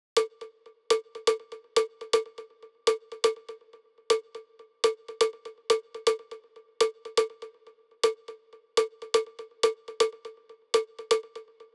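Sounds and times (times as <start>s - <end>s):
tribal percussion drop loop in A minor: 0.2s - 11.6s.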